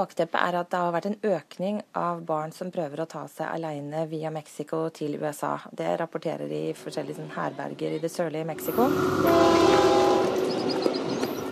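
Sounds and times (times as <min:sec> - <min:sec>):
speech: 0:00.0 - 0:10.1
train rumbling past with rolling wagons: 0:06.7 - 0:11.5
train horn blast: 0:08.5 - 0:11.5.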